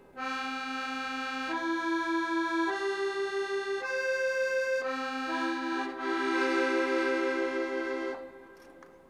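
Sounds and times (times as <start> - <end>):
accordion with two voices: 0.0 - 8.8.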